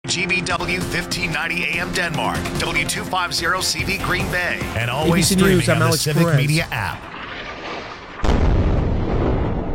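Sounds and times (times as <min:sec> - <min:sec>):
speech: 0:00.1 - 0:07.1
huge explosion in Gaza: 0:07.0 - 0:09.7.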